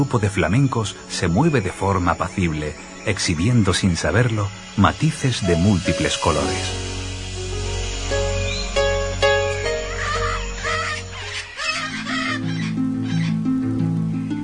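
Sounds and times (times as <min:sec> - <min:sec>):
speech: 0:00.0 - 0:06.9
steady musical backdrop: 0:00.0 - 0:14.4
parrots squawking and chattering at a zoo: 0:08.3 - 0:13.4.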